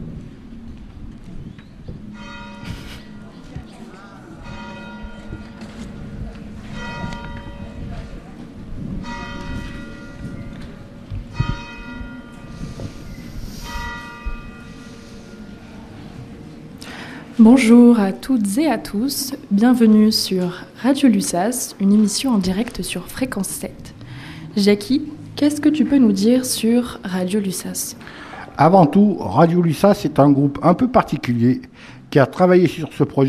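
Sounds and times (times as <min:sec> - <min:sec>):
steady low rumble: 0:00.0 - 0:29.3
church bells ringing: 0:02.1 - 0:16.4
speech: 0:17.4 - 0:23.9, 0:24.5 - 0:33.2.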